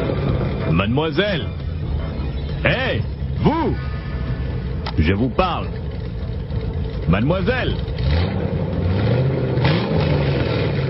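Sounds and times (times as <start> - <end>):
car engine revving: 0.0 - 10.8
speech: 0.8 - 1.6, 5.0 - 5.8, 7.1 - 9.4.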